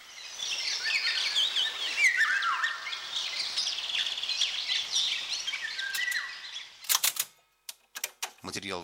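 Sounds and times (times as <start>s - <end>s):
chorus of other birds chirping: 0.0s - 7.4s
Eurasian golden oriole singing fluting downward-gliding whistles: 0.5s - 6.7s
sharp clicks: 5.9s - 6.2s, 6.8s - 8.4s.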